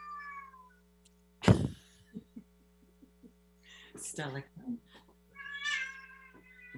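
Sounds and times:
pet cat meowing: 0.0 - 0.7, 5.4 - 6.7
steady low hum: 0.0 - 5.4
speech: 4.0 - 5.1.

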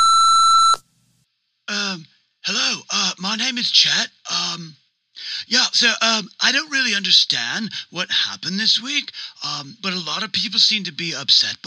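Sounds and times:
electronic answering machine beep: 0.0 - 0.8
speech: 2.5 - 11.6.

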